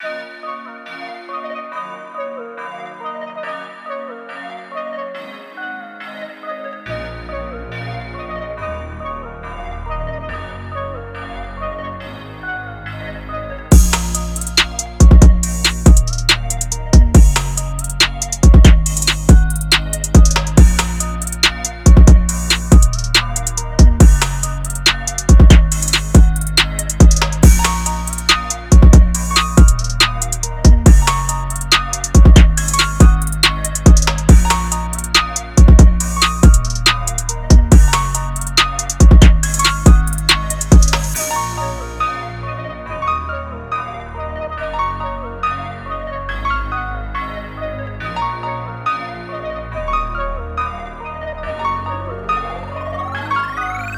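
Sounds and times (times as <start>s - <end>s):
drum kit: 13.7s - 41.8s.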